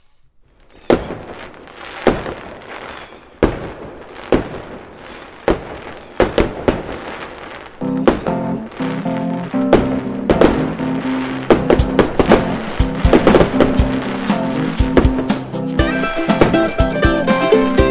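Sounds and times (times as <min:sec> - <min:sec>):
fuse-lit explosive charge bangs: 0:00.9 - 0:17.8.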